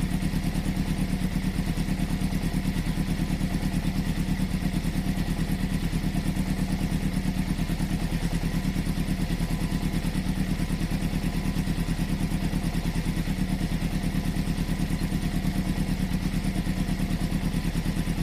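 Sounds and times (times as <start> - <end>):
motorcycle engine idling: 0.0 - 18.2.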